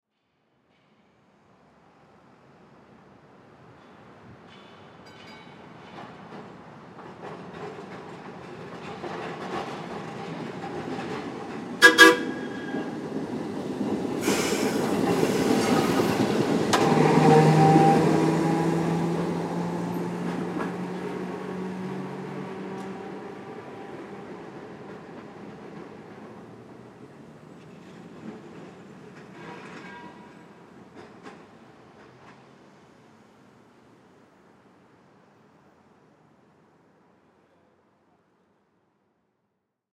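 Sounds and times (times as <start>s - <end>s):
trolley driving by: 4.7s - 33.1s
trolley whistle: 11.8s - 13.0s.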